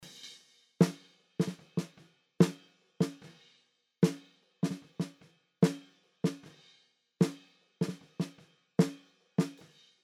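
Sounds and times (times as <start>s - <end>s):
snare drum without compression: 0.8s - 3.4s, 4.0s - 6.6s, 7.2s - 9.8s.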